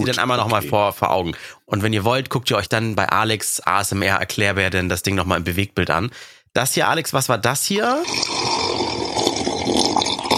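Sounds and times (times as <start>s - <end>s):
speech: 0.0s - 9.1s
person drinking water with gurgling and swallows: 8.0s - 10.3s.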